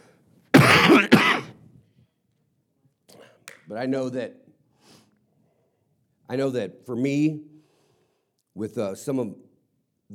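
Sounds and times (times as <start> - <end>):
person coughing: 0.6 - 1.5
throat clearing: 0.6 - 1.5
speech: 3.7 - 4.5, 6.3 - 7.5, 8.6 - 9.5.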